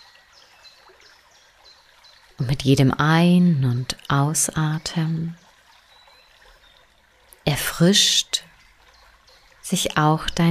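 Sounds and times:
stream water flowing and splashing: 0:00.0 - 0:10.4
speech: 0:02.4 - 0:05.4, 0:07.6 - 0:08.5, 0:09.7 - 0:10.4.

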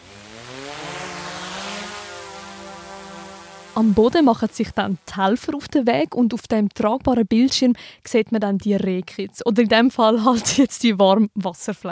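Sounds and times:
drones taking off near Winterthur Switzerland searching tall grass: 0:00.0 - 0:05.3
speech: 0:03.8 - 0:11.9.

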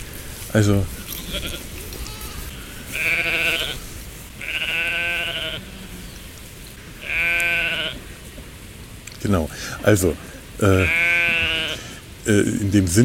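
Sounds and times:
rough noise: 0:00.0 - 0:13.0
speech: 0:00.5 - 0:01.7, 0:09.2 - 0:11.1, 0:12.3 - 0:13.0
sheep bleating: 0:01.0 - 0:06.2, 0:06.9 - 0:08.0, 0:10.6 - 0:12.0.

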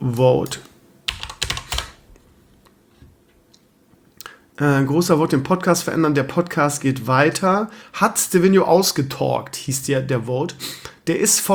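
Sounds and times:
speech: 0:00.0 - 0:00.7, 0:04.6 - 0:11.5
typing on a computer keyboard: 0:01.1 - 0:02.0.

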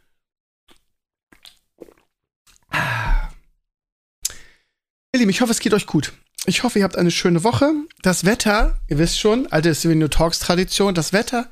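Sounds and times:
person gulping a beverage: 0:00.7 - 0:03.5
speech: 0:05.2 - 0:11.4.

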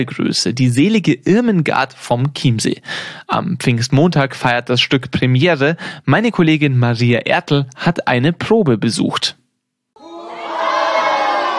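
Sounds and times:
speech: 0:00.0 - 0:09.4
crowd cheering in welcome at a stage play rehearsal on the Fraueninsel in Chiemsee: 0:10.0 - 0:11.5.

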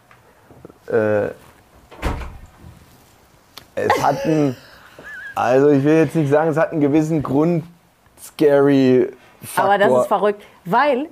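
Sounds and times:
speech: 0:00.9 - 0:01.4, 0:03.9 - 0:04.6, 0:05.4 - 0:11.1
door creaking open on squeaky hinges: 0:01.8 - 0:02.8.

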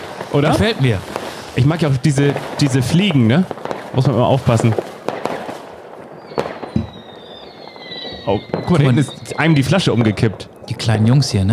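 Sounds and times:
steady hiss: 0:00.0 - 0:07.4, 0:08.1 - 0:11.5
firecrackers set off in a football manager video game: 0:00.0 - 0:11.5
speech: 0:00.3 - 0:04.9, 0:08.2 - 0:11.5
faint whistling tone: 0:06.2 - 0:11.5
low thump: 0:06.8 - 0:07.0.

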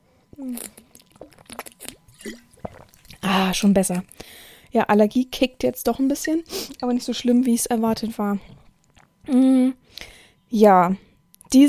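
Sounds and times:
person sipping and swallowing water: 0:00.3 - 0:04.3, 0:08.5 - 0:09.4
speech: 0:00.4 - 0:00.8, 0:03.3 - 0:08.6, 0:09.3 - 0:11.6.

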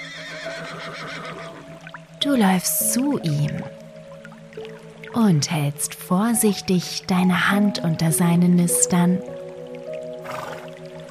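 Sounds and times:
unicorn neighing: 0:00.0 - 0:01.7, 0:10.2 - 0:10.7
speech: 0:00.7 - 0:03.8, 0:05.2 - 0:09.4.

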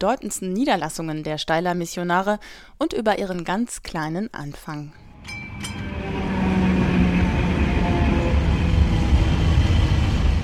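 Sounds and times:
speech: 0:00.0 - 0:05.0
faint metallic squeals of tram: 0:05.0 - 0:10.2
tram rattling along rails: 0:05.1 - 0:10.4.

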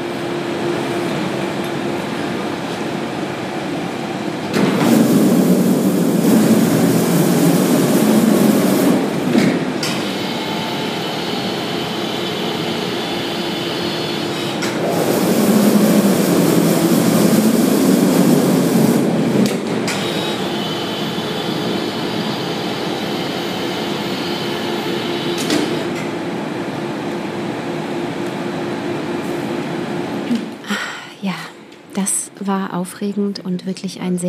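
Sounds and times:
cremation oven roaring as its door opens: 0:00.0 - 0:30.4
coffin lifting platform rising in a crematorium in Dachsenhausen: 0:04.4 - 0:26.2
speech: 0:32.5 - 0:34.2.

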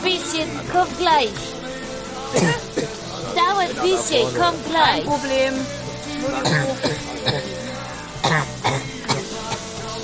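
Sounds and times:
steady murmuring background: 0:00.0 - 0:10.0
speech: 0:00.3 - 0:01.6, 0:02.3 - 0:02.6, 0:03.2 - 0:07.6, 0:08.2 - 0:08.9
person clearing throat: 0:02.3 - 0:03.0, 0:06.4 - 0:09.7
person coughing: 0:02.4 - 0:03.0, 0:06.4 - 0:07.6, 0:08.2 - 0:09.4.

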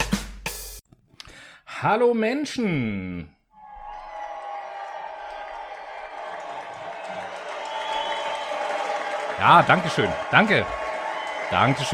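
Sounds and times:
speech: 0:01.8 - 0:03.4, 0:09.4 - 0:10.8, 0:11.5 - 0:11.9
crowd applause of many hands clapping: 0:03.6 - 0:11.9
faint cheering: 0:03.6 - 0:11.9.

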